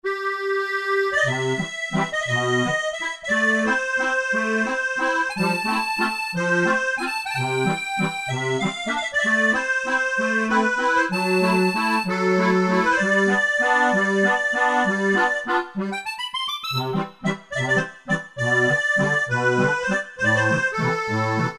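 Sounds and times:
warm accordion on a synthesizer: 0.1 - 21.5.

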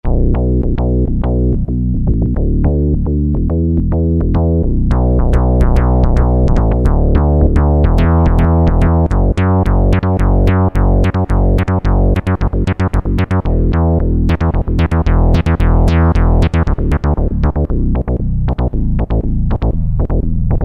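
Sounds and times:
synth bass: 0.0 - 20.6.

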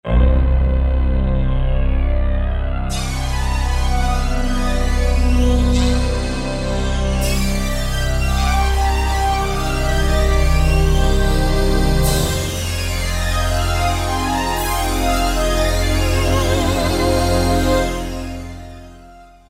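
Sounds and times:
Yamaha TG500 synthesizer sound: 0.2 - 9.8, 10.4 - 19.4.

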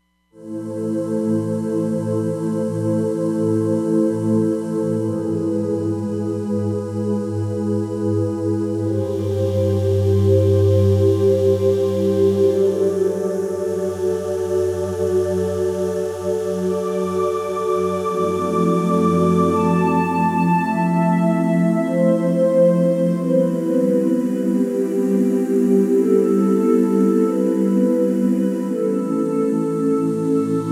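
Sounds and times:
synthesizer angels choir sound: 0.4 - 30.7.

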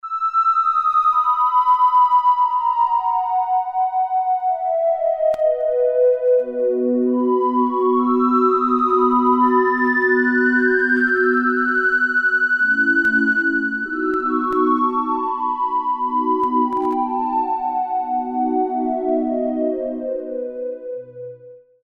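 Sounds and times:
sinusoidal tone from a Roland Alpha Juno-2 synthesizer: 0.0 - 21.6.

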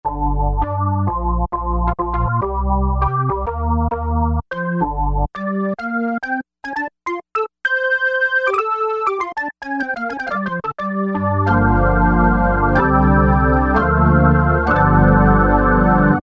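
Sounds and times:
synthesizer organ factory preset: 0.0 - 16.2.

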